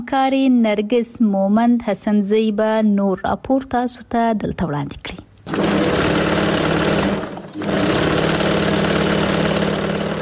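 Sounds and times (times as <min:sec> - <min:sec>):
speech: 0:00.0 - 0:05.9
tailor's sewing machine whirring in Kabul: 0:05.4 - 0:10.2.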